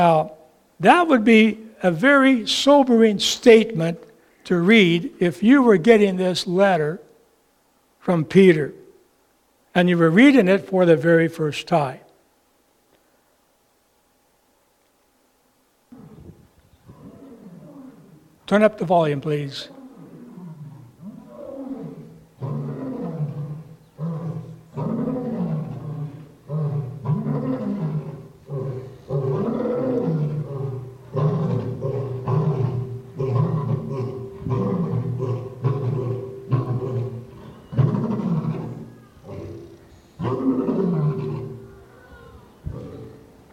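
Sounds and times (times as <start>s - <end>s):
speech: 0.0s - 7.0s, 8.0s - 8.8s, 9.8s - 12.0s, 18.5s - 19.8s
lion roaring: 15.9s - 18.3s, 19.6s - 41.7s, 42.7s - 43.4s.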